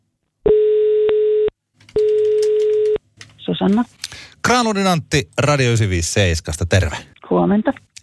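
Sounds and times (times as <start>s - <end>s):
telephone ringback tone: 0.5s - 3.0s
speech: 3.6s - 7.8s.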